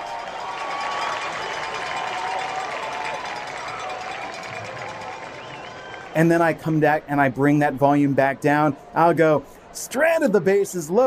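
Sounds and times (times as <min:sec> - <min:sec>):
large stadium crowd roaring and cheering: 0:00.0 - 0:11.0
faint whistles from a stadium crowd: 0:05.4 - 0:06.1
speech: 0:06.2 - 0:11.0.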